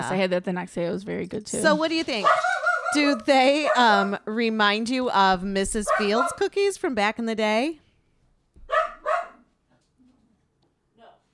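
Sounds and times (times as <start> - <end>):
speech: 0.0 - 7.8
dog barking: 2.2 - 4.2, 5.9 - 6.4, 8.6 - 9.5.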